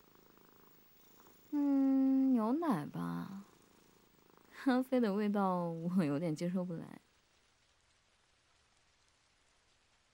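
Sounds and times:
cat purring: 0.0 - 7.2
speech: 2.5 - 3.4, 4.6 - 7.0.

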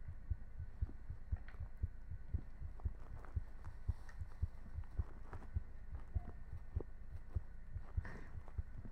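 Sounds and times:
faint hum: 0.0 - 8.8
heartbeat thumping in low pulses: 0.0 - 8.8.

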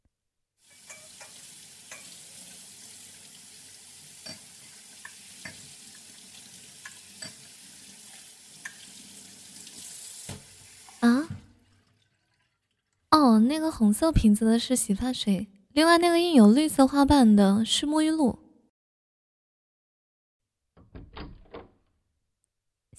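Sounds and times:
water running into a sink: 0.6 - 13.1
bowls and chopsticks clinking while being washed: 0.7 - 2.2, 4.2 - 5.8, 6.8 - 7.5
speech: 13.2 - 18.4.

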